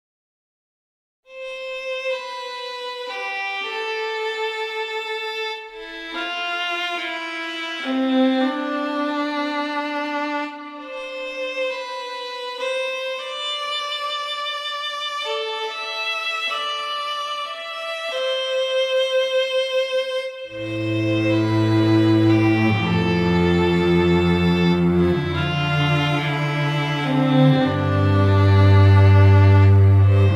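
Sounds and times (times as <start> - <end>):
relaxing music on string instruments: 1.3 - 30.3.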